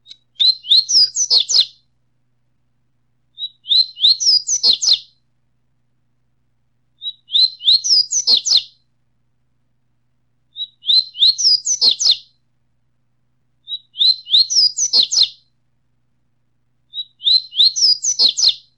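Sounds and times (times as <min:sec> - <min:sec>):
Coleiro Tui Tui singing: 0:00.0 - 0:01.8, 0:03.4 - 0:05.2, 0:07.0 - 0:08.8, 0:10.5 - 0:12.4, 0:13.6 - 0:15.5, 0:16.9 - 0:18.7.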